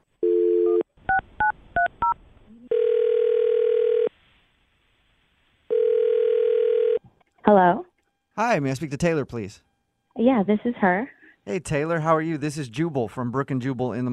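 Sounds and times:
long loud even telephone tones: 0.2s - 0.8s, 1.4s - 4.1s, 5.7s - 7.0s
telephone dial tone: 0.2s - 0.8s, 2.7s - 4.1s, 5.7s - 7.0s
speech: 8.5s - 14.1s.

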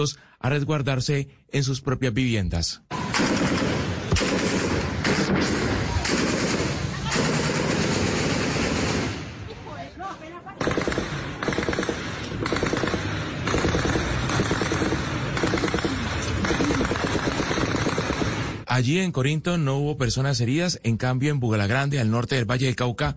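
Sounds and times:
speech: 0.0s - 4.5s, 18.8s - 23.1s
rifle fire bursts at a police station: 2.9s - 9.5s, 10.6s - 18.7s.

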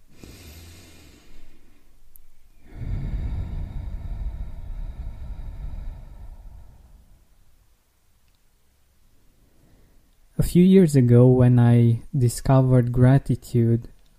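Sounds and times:
deep breath in and out: 0.0s - 7.5s, 9.2s - 10.1s
speech: 10.4s - 13.9s.

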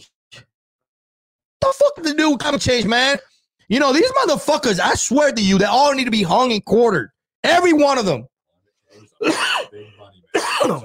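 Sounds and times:
speech: 1.8s - 8.3s, 9.2s - 10.8s
man clearing throat: 9.2s - 10.8s
man giving a loud harsh cough: 9.2s - 10.8s.

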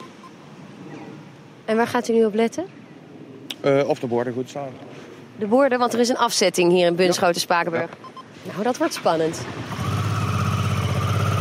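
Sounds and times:
speech: 1.7s - 2.8s, 3.6s - 9.8s
motorcycle engine riding away in Bunschoten-Spakenburg: 8.9s - 11.3s.

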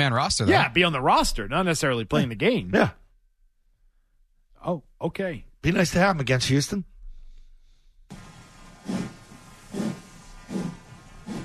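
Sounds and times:
speech: 0.0s - 3.0s, 4.6s - 6.9s
steam train chuffing as it pulls away from a station: 8.1s - 11.4s.

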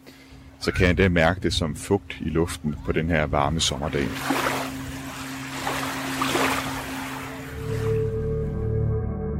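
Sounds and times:
steady motor hum: 0.1s - 8.3s
speech: 0.6s - 4.6s
low droning engine: 1.2s - 9.2s
waves washing and surging at a beach: 3.8s - 8.1s.

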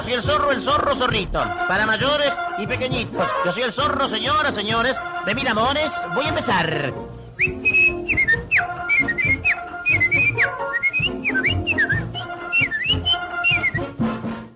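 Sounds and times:
full musical backing with steady rhythm: 0.0s - 14.5s
speech: 0.1s - 7.8s
clear melodic whistled tune: 7.2s - 14.2s.

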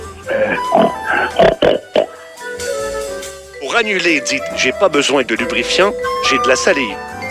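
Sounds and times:
pig oinking in snorting grunts: 0.2s - 2.2s
speech: 3.8s - 7.1s.

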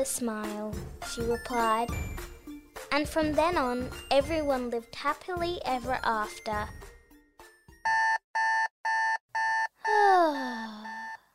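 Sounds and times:
speech: 0.0s - 2.3s, 2.9s - 6.9s
electronic alarm clock beeping: 7.8s - 11.3s.

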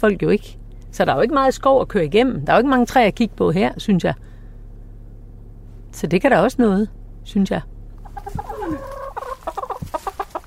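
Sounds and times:
speech: 0.0s - 4.3s, 5.9s - 8.4s
chickens clucking in a small backyard flock of five hens: 8.0s - 10.4s.

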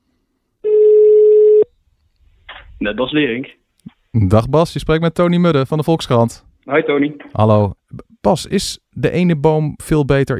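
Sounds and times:
telephone ringback tone on an outgoing call: 0.6s - 1.7s
speech: 2.8s - 10.3s.

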